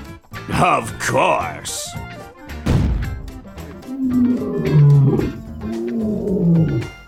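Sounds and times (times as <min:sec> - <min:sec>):
speech: 0:00.5 - 0:01.9, 0:04.1 - 0:05.2
lion roaring: 0:03.6 - 0:07.0.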